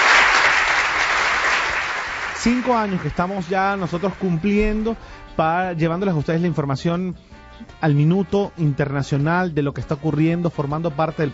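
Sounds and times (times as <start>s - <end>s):
crowd of people applauding at a radio anniversary event: 0.0s - 4.9s
speech: 2.4s - 11.3s.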